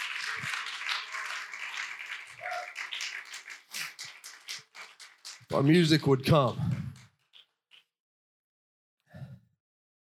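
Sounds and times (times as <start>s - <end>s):
crowd applauding: 0.0s - 7.1s
speech: 5.5s - 6.7s.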